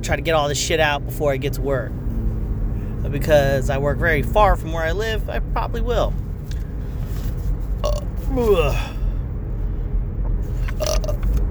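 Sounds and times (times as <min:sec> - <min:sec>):
speech: 0:00.0 - 0:02.1, 0:03.0 - 0:06.2, 0:08.3 - 0:09.0
steady low rumble: 0:00.0 - 0:11.4
loud drawn-out croaky burp: 0:07.8 - 0:09.0, 0:10.8 - 0:11.3.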